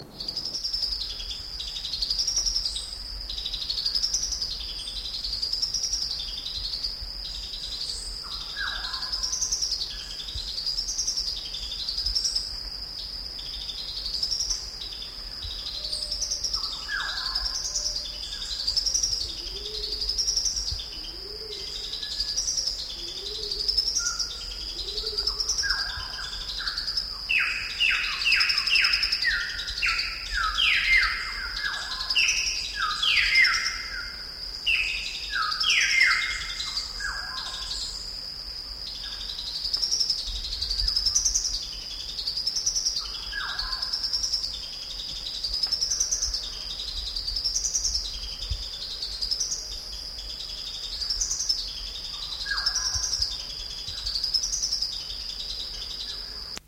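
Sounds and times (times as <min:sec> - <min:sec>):
sunbird calling: 0:00.0 - 0:38.2, 0:38.8 - 0:56.6.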